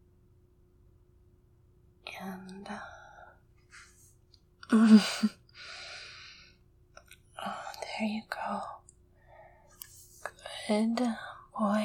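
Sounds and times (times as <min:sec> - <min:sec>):
speech: 0:04.7 - 0:05.4, 0:08.0 - 0:08.8, 0:10.7 - 0:11.8
deep breath: 0:05.6 - 0:06.6.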